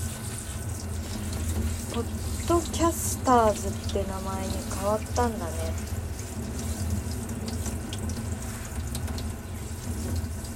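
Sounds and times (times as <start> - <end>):
tap water running into a sink while washing chrysanthemum petals: 0.0 - 10.5
speech: 2.0 - 5.9.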